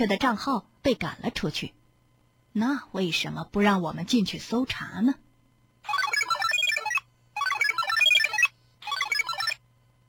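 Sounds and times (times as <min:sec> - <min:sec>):
speech: 0:00.0 - 0:01.8, 0:02.6 - 0:05.2
faint low hum: 0:00.0 - 0:10.0
mobile phone ringing with a warbling electronic melody: 0:05.9 - 0:09.6.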